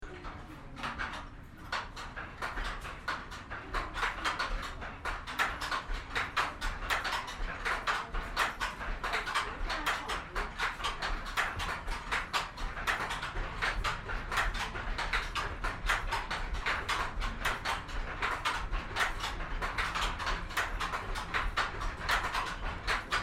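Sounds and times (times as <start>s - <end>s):
silk looms weaving in Burma: 0.0s - 23.2s.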